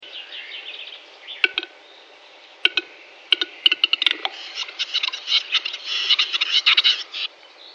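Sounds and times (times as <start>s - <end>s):
capercaillie calling: 1.3s - 1.8s, 2.6s - 7.4s.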